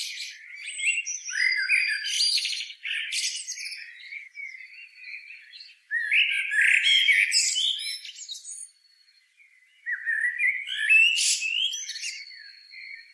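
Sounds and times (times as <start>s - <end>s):
common blackbird Turdus merula giving scratchy squawking calls: 0.0s - 8.6s, 9.8s - 13.1s.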